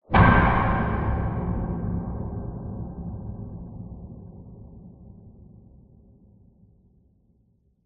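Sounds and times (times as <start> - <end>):
loud distant metallic cinematic hit: 0.1 - 4.8.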